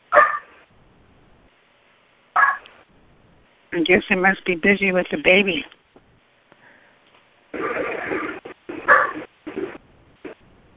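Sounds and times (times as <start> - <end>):
small dog barking in another room: 0.1 - 0.5, 2.4 - 2.6, 8.8 - 9.3
speech: 3.8 - 5.8.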